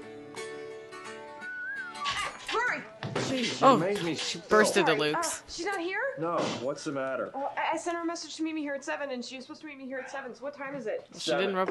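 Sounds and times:
busy music: 0.0s - 5.4s
rising and falling whistle: 1.4s - 2.4s
speech: 2.8s - 11.7s.

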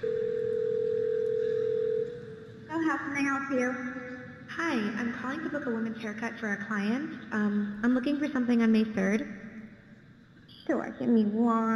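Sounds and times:
steady low telephone tone: 0.0s - 2.5s
speech: 3.2s - 9.4s, 10.7s - 11.7s.

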